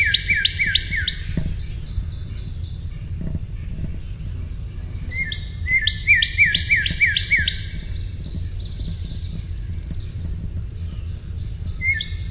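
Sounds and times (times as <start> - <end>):
northern cardinal whistled song: 0.0 - 1.8, 5.1 - 8.0, 11.8 - 12.3
continuous low rumbling noise: 0.0 - 12.3.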